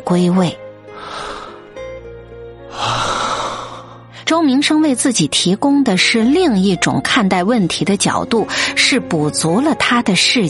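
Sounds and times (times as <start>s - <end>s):
speech: 0.1s - 0.6s, 4.3s - 10.4s
deep breath: 1.0s - 1.8s, 2.7s - 4.2s.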